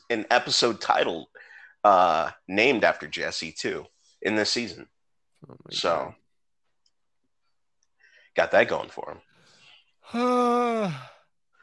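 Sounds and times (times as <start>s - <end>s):
speech: 0.1s - 6.2s, 8.4s - 9.3s, 10.1s - 11.1s
loud drawn-out yawn into the microphone: 10.0s - 11.3s.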